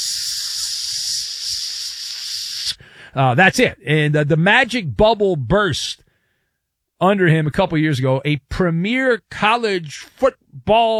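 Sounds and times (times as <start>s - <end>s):
food sizzling on a hibachi grill: 0.0s - 2.7s
speech: 2.7s - 6.0s, 7.0s - 10.9s.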